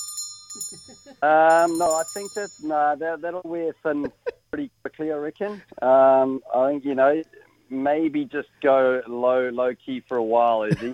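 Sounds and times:
bell ringing: 0.0 - 2.8
speech: 0.6 - 10.9.

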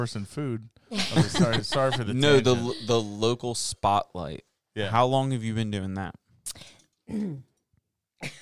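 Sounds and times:
speech: 0.0 - 7.5, 8.2 - 8.3
laughter: 1.0 - 3.0
woman giving rough throaty coughs: 7.1 - 7.4.

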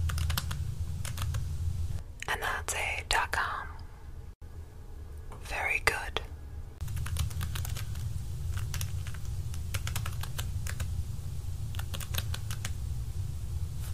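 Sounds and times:
computer keyboard typing: 0.0 - 1.4, 6.8 - 10.9, 11.7 - 12.8
steady low hum: 0.0 - 13.9.

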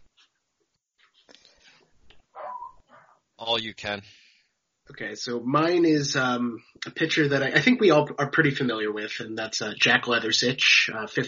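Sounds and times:
dog barking: 2.4 - 3.2
speech: 3.4 - 4.2, 4.9 - 11.2.

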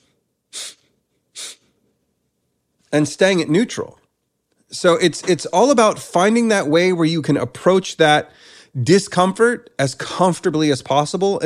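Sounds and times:
short sharp breaths drawn in through the nose with the mouth closed: 0.0 - 1.8
speech: 2.9 - 4.0, 4.7 - 11.4.

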